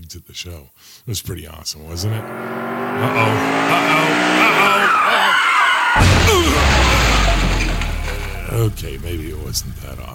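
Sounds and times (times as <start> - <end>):
speech: 0.1 - 5.2, 8.5 - 10.1
car tires squealing: 1.9 - 9.8
car engine revving: 1.9 - 10.1
car crash smash: 3.5 - 8.8
rumble of car crash impact and debris: 6.0 - 10.0.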